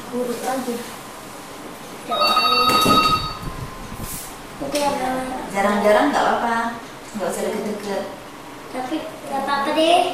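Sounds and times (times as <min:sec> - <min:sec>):
speech: 0:00.1 - 0:01.0, 0:02.1 - 0:02.7, 0:04.6 - 0:10.1
telephone ringing with bright electronic tone: 0:02.1 - 0:03.7.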